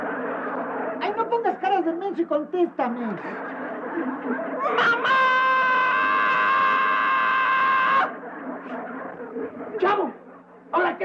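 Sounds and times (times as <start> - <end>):
laughter: 0.0 - 1.5, 3.1 - 10.7
speech: 1.8 - 5.3
boy wailing loudly and high-pitched: 4.6 - 8.1.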